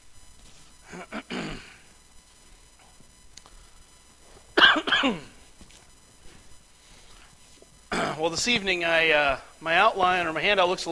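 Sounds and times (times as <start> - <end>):
man coughing: 0.8 - 1.8, 4.6 - 5.4, 7.9 - 8.3
speech: 0.9 - 1.4, 5.0 - 5.3, 8.2 - 10.9
man clearing throat: 0.9 - 1.8, 4.6 - 5.4, 7.9 - 8.3.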